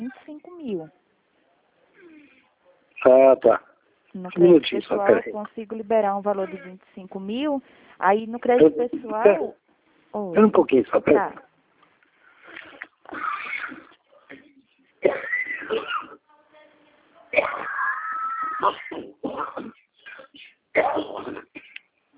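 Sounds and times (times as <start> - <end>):
speech: 3.0 - 11.5
person in a coughing fit: 13.1 - 16.2, 18.6 - 21.8.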